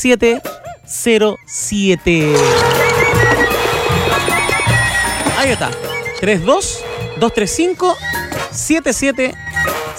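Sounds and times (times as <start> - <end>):
speech: 0.0 - 2.8, 5.4 - 9.9
telephone ringing with an incoming call: 2.2 - 8.5.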